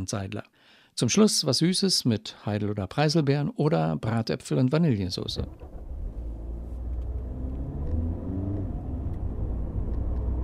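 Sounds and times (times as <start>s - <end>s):
speech: 0.0s - 5.8s
car engine rumble while driving on a road: 5.4s - 10.4s.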